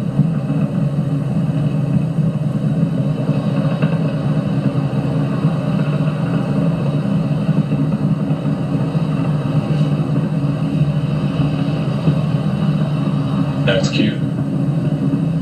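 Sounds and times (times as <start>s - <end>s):
Falcon 9 rocket engines roaring during launch near Max-Q: 0.0s - 15.4s
person talking: 13.7s - 14.3s.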